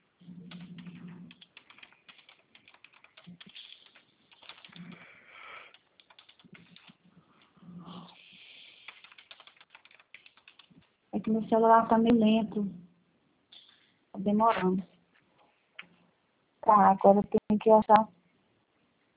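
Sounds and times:
rapid tapping of keys being typed: 0:00.2 - 0:07.2, 0:07.9 - 0:12.2
speech: 0:11.2 - 0:12.8, 0:14.2 - 0:14.9, 0:16.7 - 0:18.2.

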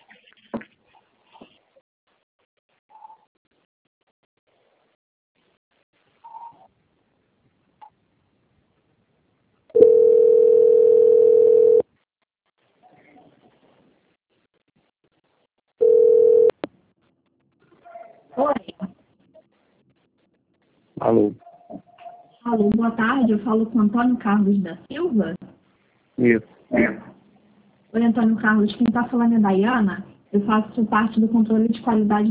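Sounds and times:
telephone tones during a call transfer to a bank's quality-control line: 0:09.7 - 0:11.8, 0:15.8 - 0:16.6
speech: 0:22.5 - 0:25.4, 0:26.2 - 0:27.0, 0:28.0 - 0:32.2.

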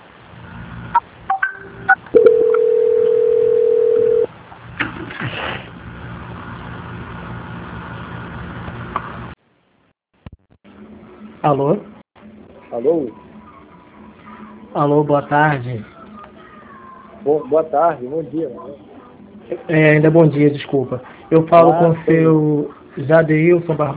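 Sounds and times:
telephone call-transfer tone as a bank call is passed on: 0:01.4 - 0:04.3
speech: 0:11.6 - 0:11.9, 0:12.8 - 0:13.3, 0:14.8 - 0:15.9, 0:17.2 - 0:18.9, 0:19.5 - 0:23.9.

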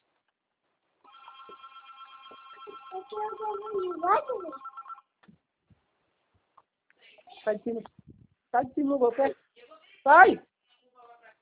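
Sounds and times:
telephone ringing with an electronic trill: 0:01.0 - 0:05.2
speech: 0:03.1 - 0:04.7, 0:07.4 - 0:08.0, 0:08.6 - 0:09.4, 0:10.0 - 0:10.5.

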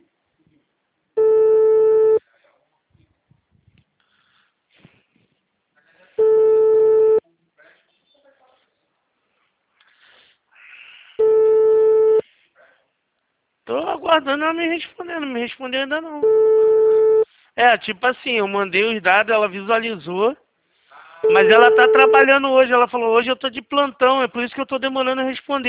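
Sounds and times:
ringback tone on an outgoing telephone call: 0:01.2 - 0:02.2, 0:06.2 - 0:07.2, 0:11.2 - 0:12.2, 0:16.2 - 0:17.2, 0:21.2 - 0:22.3
speech: 0:14.1 - 0:16.6, 0:17.6 - 0:20.4, 0:21.2 - 0:25.6.

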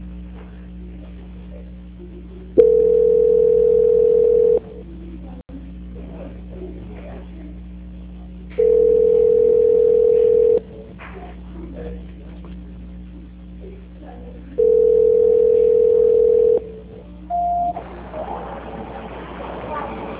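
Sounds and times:
telephone line tones during call transfer: 0:02.6 - 0:04.7, 0:08.6 - 0:10.6, 0:14.6 - 0:16.7, 0:17.3 - 0:17.8.

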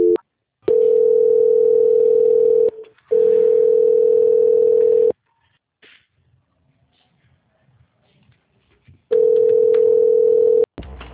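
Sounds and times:
telephone line tones during a call transfer: 0:00.0 - 0:05.2, 0:09.1 - 0:10.7.

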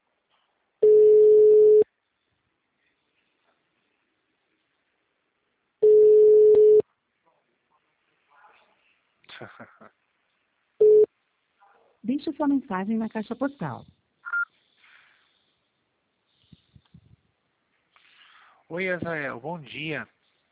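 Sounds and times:
telephone ringback tone on an unanswered call: 0:00.8 - 0:01.8, 0:05.8 - 0:06.8, 0:10.8 - 0:11.1
speech: 0:09.4 - 0:10.0, 0:12.1 - 0:14.0, 0:18.7 - 0:20.2.

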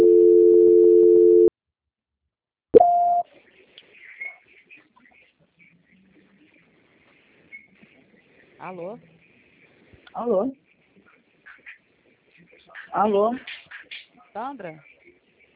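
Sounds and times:
telephone busy signal on an occupied extension line: 0:00.0 - 0:01.5, 0:02.8 - 0:03.2
short high beep: 0:02.8 - 0:03.2
speech: 0:08.7 - 0:09.1, 0:10.2 - 0:10.6, 0:12.9 - 0:13.5, 0:14.4 - 0:14.9.

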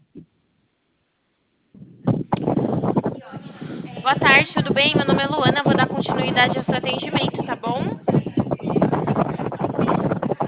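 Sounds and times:
gusty wind buffeting a phone microphone: 0:01.8 - 0:10.4
speech: 0:04.0 - 0:08.0.

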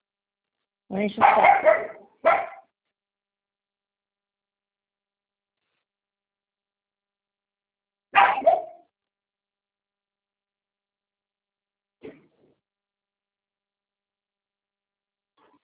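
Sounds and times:
speech: 0:00.9 - 0:02.4
female dog barking: 0:01.2 - 0:02.7, 0:08.1 - 0:08.9.

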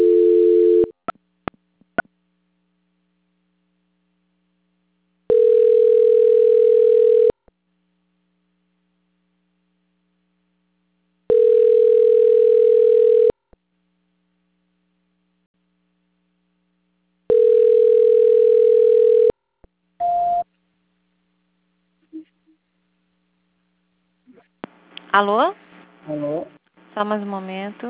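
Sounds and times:
telephone ringback tone while a call is transferred: 0:00.0 - 0:00.9, 0:05.3 - 0:07.3, 0:11.3 - 0:13.3, 0:17.3 - 0:19.3
speech: 0:25.2 - 0:27.8.

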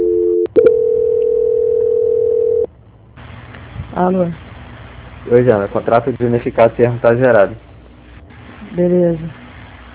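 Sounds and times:
telephone tone during a call transfer: 0:00.0 - 0:02.7
speech: 0:04.0 - 0:04.4, 0:05.2 - 0:07.7, 0:08.8 - 0:09.4.

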